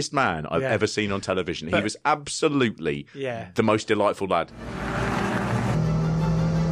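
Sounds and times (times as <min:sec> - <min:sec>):
speech: 0:00.0 - 0:05.0
racing car engine droning: 0:04.6 - 0:06.7.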